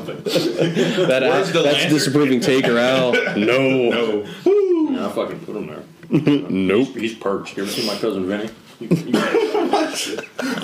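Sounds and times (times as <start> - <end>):
laughter: 0.0 - 5.0, 8.8 - 10.6
speech: 0.0 - 9.4, 10.0 - 10.6
person coughing harshly: 3.1 - 3.4.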